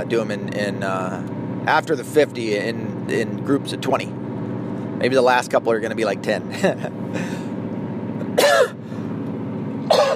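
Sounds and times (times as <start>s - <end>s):
speech: 0.0s - 4.2s, 5.0s - 7.4s
low hum: 0.0s - 10.1s
harsh chesty coughs with throat clearing: 8.4s - 8.8s, 9.9s - 10.1s.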